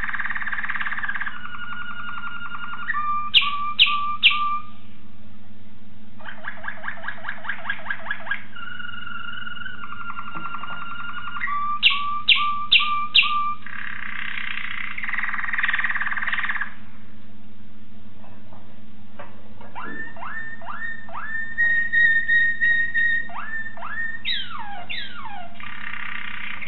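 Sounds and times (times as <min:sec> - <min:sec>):
Waterslager canary singing rolling trills and bubbling tours: 0:00.0 - 0:05.0, 0:06.2 - 0:16.8, 0:19.7 - 0:26.6.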